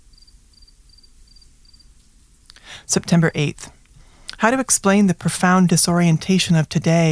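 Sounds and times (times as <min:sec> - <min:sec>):
cricket chirping: 0:00.0 - 0:02.1
speech: 0:02.9 - 0:03.8, 0:04.4 - 0:07.1.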